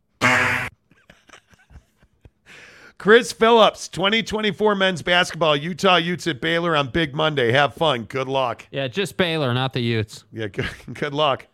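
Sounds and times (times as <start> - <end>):
loud buzzy fart sound effect: 0.1 - 0.7
laughter: 0.9 - 2.5, 10.5 - 11.2
speech: 3.0 - 11.5.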